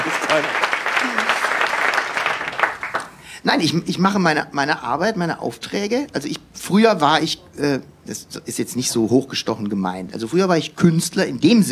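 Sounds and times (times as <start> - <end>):
crowd clapping: 0.0 - 3.2
speech: 0.3 - 1.1, 3.4 - 11.7
people calling out over applause: 1.0 - 1.5.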